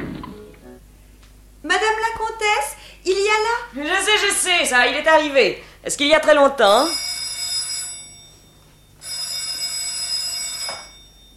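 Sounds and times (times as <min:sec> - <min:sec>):
speech: 0:03.3 - 0:07.0
telephone ringing with a bright electric trill: 0:06.6 - 0:11.3.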